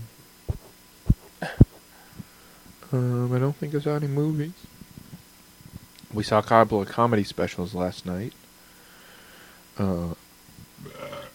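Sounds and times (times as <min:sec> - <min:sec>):
mouth and breathing sounds: 0:00.5 - 0:02.4
person burping while eating pizza: 0:01.4 - 0:01.7, 0:10.8 - 0:11.3
speech: 0:02.9 - 0:04.7, 0:06.1 - 0:08.4, 0:09.8 - 0:10.2.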